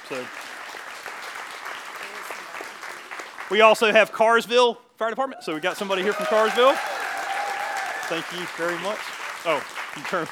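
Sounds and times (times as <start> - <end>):
audience applause: 0.0 - 3.9, 5.6 - 10.3
speech: 0.1 - 0.5, 3.5 - 6.9, 8.1 - 10.3.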